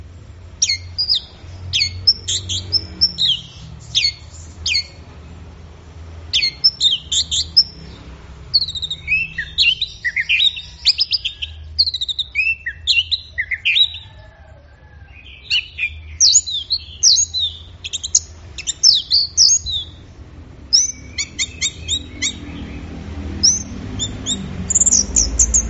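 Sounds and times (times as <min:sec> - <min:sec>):
orange-headed thrush singing a long varied song of whistles and chattering: 0:00.0 - 0:05.2, 0:06.1 - 0:14.0, 0:15.1 - 0:25.6.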